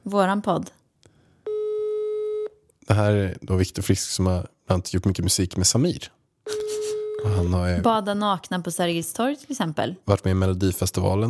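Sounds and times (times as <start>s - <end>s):
speech: 0.1s - 0.8s, 2.9s - 6.2s, 7.2s - 11.2s
electronic phone ringback tone on speakerphone: 1.5s - 2.5s, 6.5s - 7.6s.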